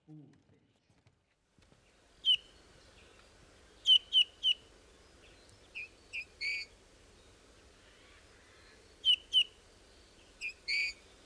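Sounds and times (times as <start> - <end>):
Eurasian bullfinch song of soft squeaky piping notes: 2.2 - 11.2.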